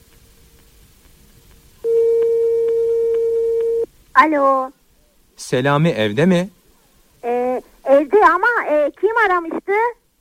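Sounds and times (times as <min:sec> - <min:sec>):
telephone ringing tone on the line: 0:01.8 - 0:03.9
speech: 0:04.2 - 0:04.8, 0:05.4 - 0:06.6, 0:08.2 - 0:10.0.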